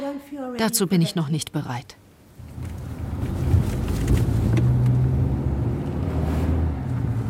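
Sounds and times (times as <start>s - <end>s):
speech: 0.1s - 2.0s
car driving: 2.2s - 7.2s
wind buffeting: 2.4s - 5.8s.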